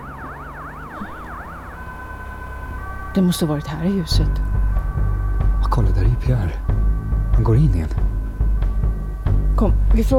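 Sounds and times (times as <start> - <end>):
ambulance siren wailing as it drives away: 0.0 - 6.8
low road rumble: 0.0 - 10.1
speech: 3.1 - 4.5, 5.8 - 6.8, 7.4 - 8.0, 9.6 - 10.1.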